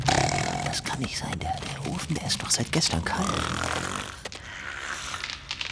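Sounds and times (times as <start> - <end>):
person snoring: 0.1 - 1.0, 2.9 - 5.3
speech: 1.0 - 4.2.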